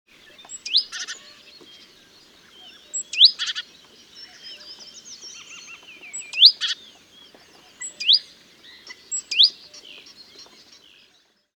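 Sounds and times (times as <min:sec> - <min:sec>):
Great tit Parus major calling with upslurred notes and buzzy bursts: 0:00.2 - 0:11.1.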